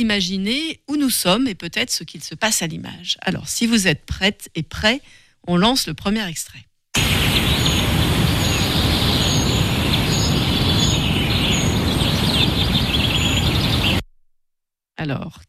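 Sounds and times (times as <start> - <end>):
speech: 0.0 - 6.7, 15.0 - 15.4
many distant birds singing in a forest: 7.0 - 14.0
steady loud rushing noise: 7.0 - 14.0.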